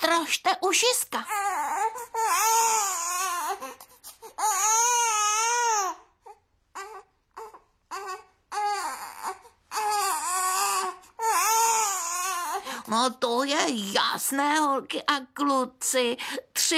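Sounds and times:
speech: 0:00.2 - 0:01.6, 0:13.0 - 0:16.7
baby crying: 0:01.2 - 0:12.8.

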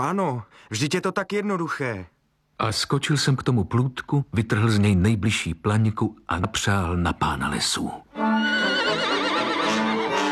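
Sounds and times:
speech: 0:00.0 - 0:08.7
horse rearing and neighing loudly: 0:08.2 - 0:10.3.

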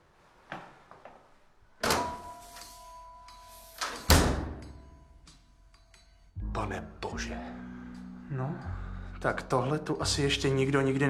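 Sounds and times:
heavy temple door clunks: 0:04.0 - 0:04.6
heavy temple door thud swinging fully open: 0:04.1 - 0:04.7
speech: 0:06.6 - 0:07.7, 0:08.3 - 0:11.0.

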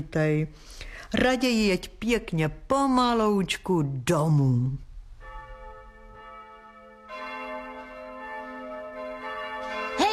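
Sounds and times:
speech: 0:00.0 - 0:04.9
church bells ringing in a continuous peal: 0:05.2 - 0:10.1.

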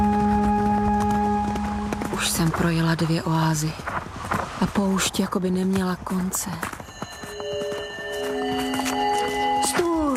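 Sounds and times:
sustained held tones: 0:00.0 - 0:02.6, 0:06.9 - 0:10.1
horse walking through a desert, hooves clip-clopping: 0:00.0 - 0:10.1
speech: 0:02.2 - 0:04.0, 0:04.8 - 0:06.8.

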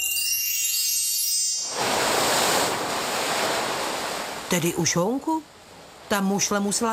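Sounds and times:
brief high shimmering tone: 0:00.0 - 0:02.0
sea waves washing in: 0:01.6 - 0:06.9
speech: 0:04.5 - 0:06.9.

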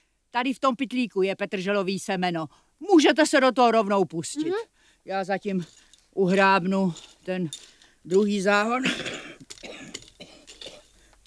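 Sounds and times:
speech: 0:00.4 - 0:10.0
harsh raspy coughs: 0:08.8 - 0:10.9.

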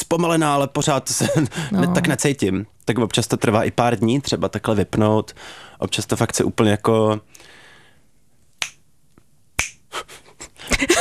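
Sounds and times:
speech: 0:00.1 - 0:07.5
finger snaps: 0:08.6 - 0:09.9.

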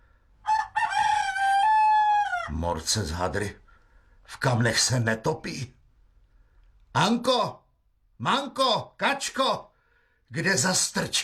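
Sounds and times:
young cockerel crowing: 0:00.4 - 0:02.6
speech: 0:02.6 - 0:03.6, 0:04.3 - 0:05.8, 0:06.9 - 0:07.6, 0:08.2 - 0:09.7, 0:10.3 - 0:11.2.

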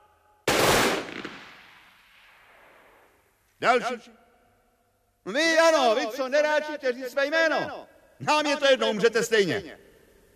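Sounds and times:
firing squad gunfire volley at an execution: 0:00.5 - 0:03.0
speech: 0:03.6 - 0:04.2, 0:05.2 - 0:09.9.

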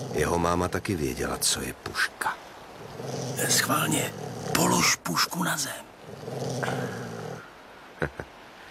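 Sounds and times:
dog growling low: 0:00.0 - 0:01.6, 0:02.7 - 0:07.5
speech: 0:00.2 - 0:02.4, 0:03.0 - 0:07.1.

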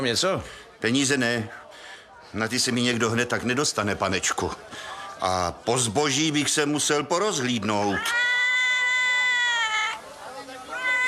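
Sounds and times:
speech: 0:00.0 - 0:08.4
cat meowing on a shelf in a shop: 0:07.8 - 0:10.0, 0:10.7 - 0:11.0.

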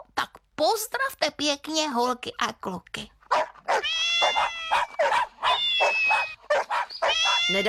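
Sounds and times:
speech: 0:00.6 - 0:03.2, 0:07.5 - 0:07.6
yappy dog yelps: 0:03.3 - 0:07.6
friendly cats meowing in greeting: 0:03.7 - 0:07.6.

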